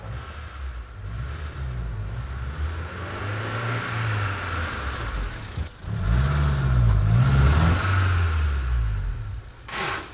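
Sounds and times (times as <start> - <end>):
car pulling away: 0.0 - 10.1.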